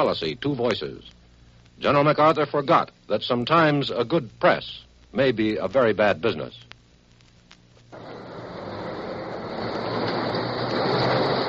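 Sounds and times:
speech: 0.0s - 1.2s, 1.8s - 6.7s
faint rattle of subway car over tracks: 8.0s - 11.4s
small underground subway car running between Senate chamber and office building: 8.0s - 11.4s.

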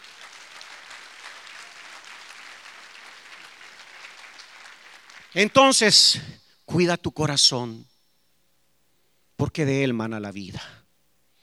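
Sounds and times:
congregation applauding: 0.0s - 5.6s
speech: 5.3s - 7.9s, 9.4s - 10.8s.

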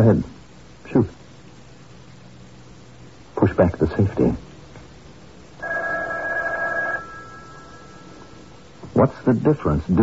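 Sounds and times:
speech: 0.0s - 0.3s, 0.9s - 1.2s, 3.4s - 4.5s, 9.0s - 10.0s
telephone ringing with an electronic bell tone: 5.6s - 8.5s.

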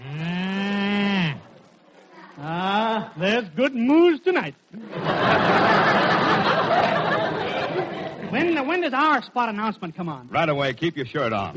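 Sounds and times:
musical cow mooing as a radio time signal: 0.0s - 1.4s
speech: 3.2s - 5.8s, 8.3s - 11.5s
laughter: 4.8s - 8.6s.

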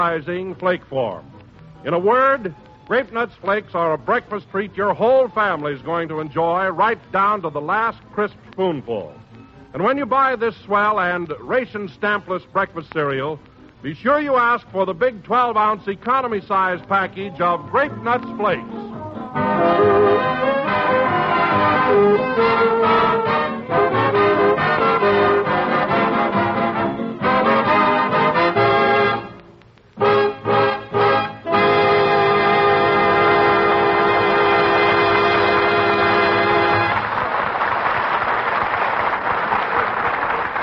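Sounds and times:
speech: 0.0s - 18.8s
orchestra playing a brisk tune: 18.0s - 29.3s, 30.0s - 37.0s
audience applause: 36.7s - 40.6s.

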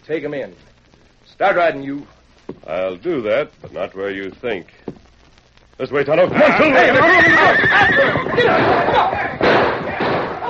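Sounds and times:
speech: 0.1s - 0.7s, 1.4s - 5.0s, 5.8s - 9.4s
scuffling commotion of horses: 4.9s - 10.4s
heavy thump of one horse crashing against another: 6.8s - 10.4s
horse whinnying loudly and shrilly: 6.9s - 9.2s.

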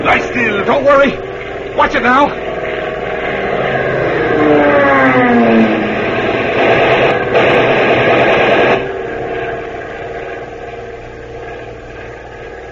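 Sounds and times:
diving warplane engine roar: 0.0s - 12.7s
speech: 0.4s - 2.5s, 5.0s - 5.8s
machine gun fire from strafing warplane: 6.4s - 9.0s.

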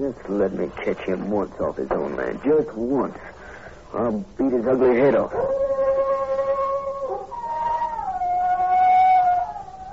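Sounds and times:
speech: 0.0s - 5.6s
wolf-like howl: 5.4s - 9.9s.

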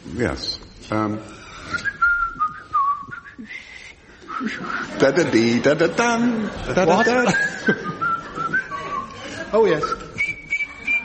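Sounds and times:
speech: 0.2s - 1.9s, 4.4s - 8.0s, 9.5s - 10.1s
person whistling a short wavering melody: 1.7s - 4.9s, 7.2s - 9.2s, 9.8s - 11.0s
laughter: 4.3s - 9.9s.

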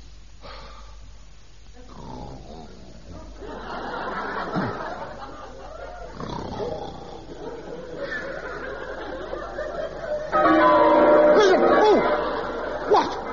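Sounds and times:
laughter: 3.2s - 13.3s
church bells ringing: 9.8s - 13.3s.

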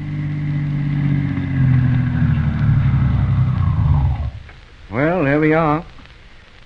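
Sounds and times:
doctor's car engine rumbling as it draws up in front of a house: 0.0s - 4.9s
speech: 5.4s - 5.9s.

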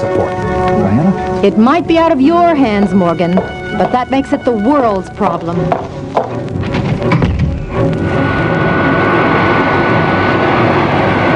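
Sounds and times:
aircraft engine roaring during climb: 0.0s - 11.3s
speech: 1.4s - 6.6s
clunks and rattles: 6.2s - 8.0s.

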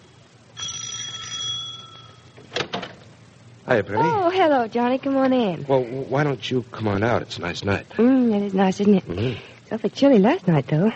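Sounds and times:
doorbell ringing: 0.6s - 2.4s
speech: 3.7s - 10.9s.

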